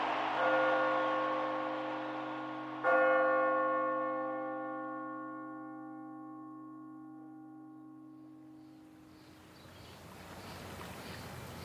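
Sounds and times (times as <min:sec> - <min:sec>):
large deep college bell struck to mark tournament victories: 0:00.0 - 0:08.9
soft broad wash of noise: 0:00.0 - 0:11.6.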